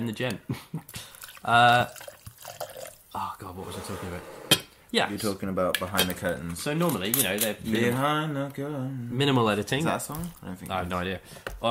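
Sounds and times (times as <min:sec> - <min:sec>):
speech: 0:00.0 - 0:02.1, 0:03.2 - 0:11.6
rum poured into a glass: 0:01.0 - 0:03.2.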